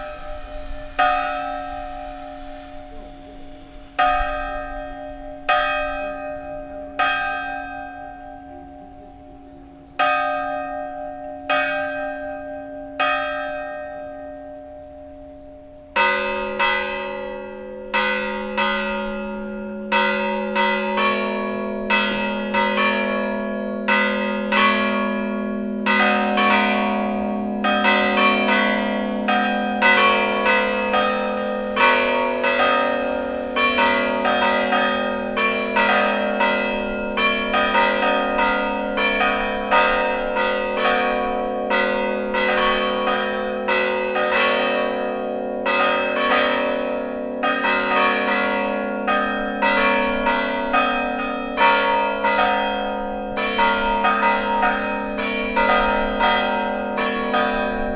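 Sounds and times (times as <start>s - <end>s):
church bells ringing at noon: 0.0s - 57.9s.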